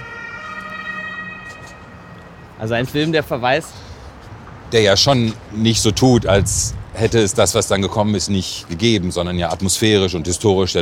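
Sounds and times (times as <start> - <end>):
ambulance siren wailing: 0.0 - 3.4
low rumble of road traffic: 0.0 - 10.7
speech: 2.6 - 3.9, 4.7 - 10.7.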